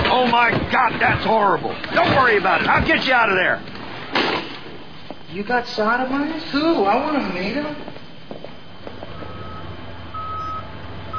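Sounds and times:
speech: 0.2 - 4.3, 5.3 - 8.0
truck reversing alarm beeping: 9.1 - 11.1.

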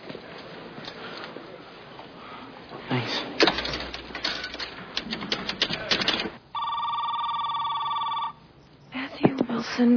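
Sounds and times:
speech: 2.9 - 3.6, 9.8 - 9.9
rapid clicking and clattering: 3.4 - 6.4
electronic telephone ring tone: 6.5 - 8.7.

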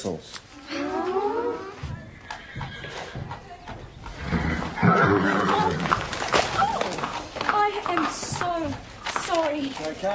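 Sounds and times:
speech: 0.0 - 0.4, 8.6 - 10.1
horse whinnying with a loud wavering neigh: 0.6 - 3.4, 4.1 - 7.1.

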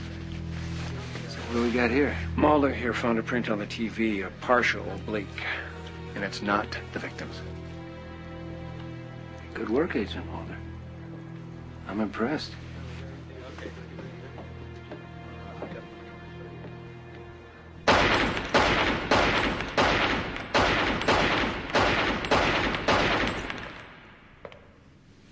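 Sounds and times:
speech: 1.5 - 7.6, 9.6 - 10.7, 11.9 - 12.6
gunfire from target shooting: 17.9 - 24.2.

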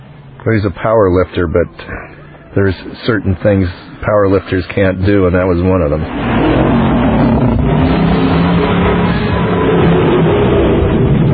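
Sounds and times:
car engine revving: 0.0 - 11.3
speech: 0.4 - 6.9.

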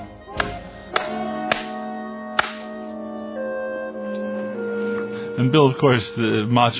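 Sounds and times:
steady music: 0.0 - 6.7
sharp loud slaps to the face: 0.4 - 2.8
speech: 5.4 - 6.7.

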